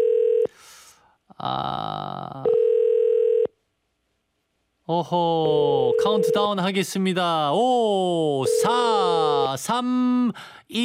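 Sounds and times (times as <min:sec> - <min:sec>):
speech: 0:01.4 - 0:02.0, 0:04.9 - 0:10.8
unanswered telephone call ringback tone: 0:02.5 - 0:03.5, 0:08.4 - 0:09.4.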